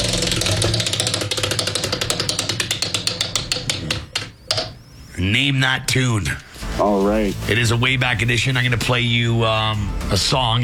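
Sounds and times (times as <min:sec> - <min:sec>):
spinning prize wheel pointer flicking over the pegs: 0:00.0 - 0:04.7
speech: 0:05.2 - 0:10.6.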